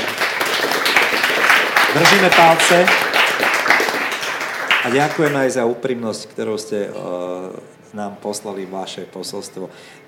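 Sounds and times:
studio applause: 0.0 - 5.6
speech: 2.0 - 3.1, 4.8 - 10.0.

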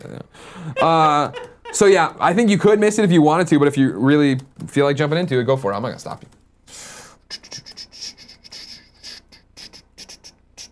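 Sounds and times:
speech: 0.0 - 6.4
laughter: 0.6 - 2.3
someone typing on a keyboard: 6.0 - 6.5.

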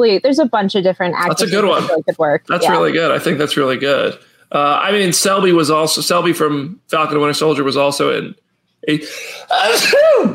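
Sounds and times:
speech: 0.0 - 10.3
person sneezing: 1.4 - 2.9, 9.0 - 10.3.

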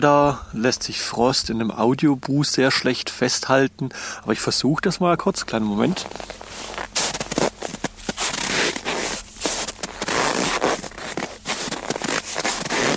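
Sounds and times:
speech: 0.0 - 6.8
footsteps crunching in snow: 5.4 - 12.9
puffy down jacket rustling: 5.8 - 12.9.

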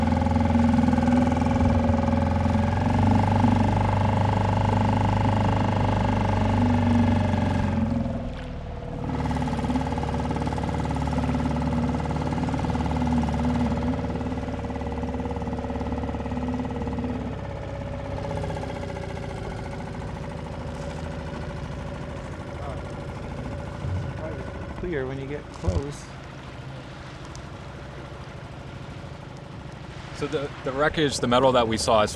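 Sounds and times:
choppy water: 0.0 - 32.1
inflatable motorboat engine droning as it takes off: 0.0 - 32.1
wind: 0.0 - 32.1
speech: 30.2 - 32.1.

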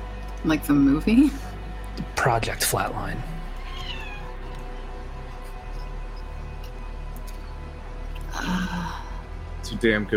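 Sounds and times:
steady low hum: 0.0 - 10.1
speech: 0.4 - 1.5, 2.2 - 3.3, 9.7 - 10.1
cat meowing: 3.6 - 4.4.

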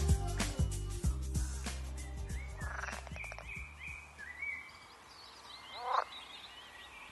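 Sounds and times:
small birds chirping and tweeting: 0.1 - 7.0
pool frog calling in wetland: 2.5 - 3.6, 5.7 - 6.3.

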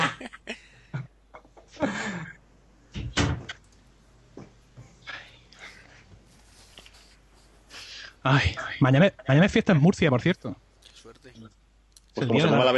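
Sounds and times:
door thumping shut: 3.0 - 3.6
speech: 8.2 - 10.6, 12.2 - 12.7.

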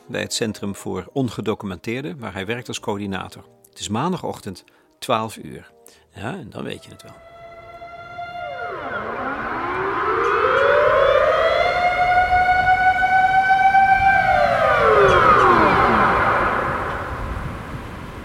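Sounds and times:
speech: 0.1 - 7.3
civil defense warning sirens wailing across central Amsterdam by a canal: 6.8 - 18.2.

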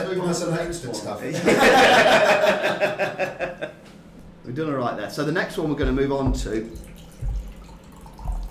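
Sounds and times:
speech: 0.1 - 3.8, 4.4 - 7.0
laughter: 1.3 - 3.8
coffee pouring from a pouring implement: 6.7 - 8.4.

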